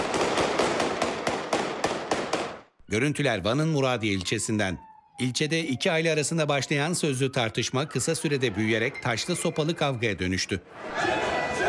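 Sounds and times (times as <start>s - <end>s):
rapid gunshots as police fire into the air: 0.0s - 2.7s
speech: 2.9s - 11.4s.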